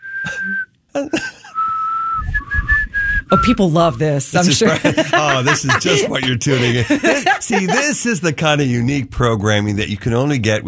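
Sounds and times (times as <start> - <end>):
person whistling a short tune: 0.0 - 0.7, 1.5 - 3.6
speech: 0.4 - 1.4, 3.3 - 10.6
laughter: 1.0 - 1.6, 4.4 - 8.7.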